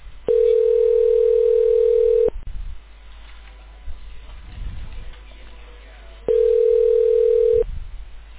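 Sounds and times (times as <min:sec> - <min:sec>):
telephone line tone while a call is transferred to voicemail: 0:00.3 - 0:02.4, 0:06.3 - 0:07.6.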